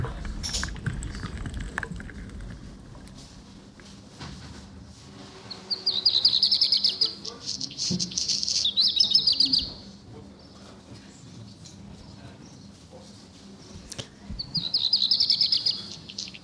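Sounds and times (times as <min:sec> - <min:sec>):
faint low rumble of noise: 0:00.0 - 0:04.0
black redstart singing: 0:05.5 - 0:10.6, 0:14.4 - 0:16.4.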